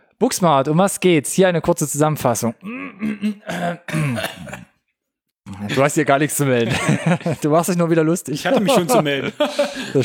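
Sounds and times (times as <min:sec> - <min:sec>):
speech: 0:00.2 - 0:04.7, 0:05.6 - 0:10.0
throat clearing: 0:02.6 - 0:04.8
laughter: 0:05.7 - 0:10.0.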